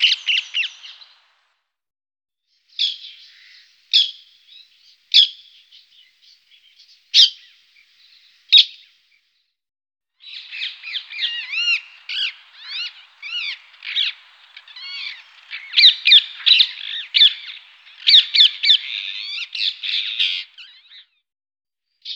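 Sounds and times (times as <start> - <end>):
rose-ringed parakeet harsh squawking and screeching: 0.0 - 1.2, 10.4 - 20.8.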